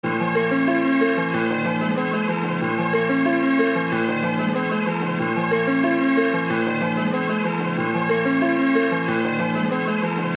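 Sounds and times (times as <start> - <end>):
piano at 186 bpm: 0.0 - 10.3.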